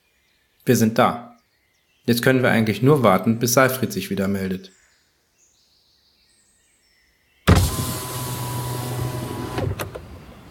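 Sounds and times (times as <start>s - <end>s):
speech: 0.7s - 1.3s, 2.1s - 4.8s
car window sliding down with mechanical whirring hum: 7.5s - 10.4s.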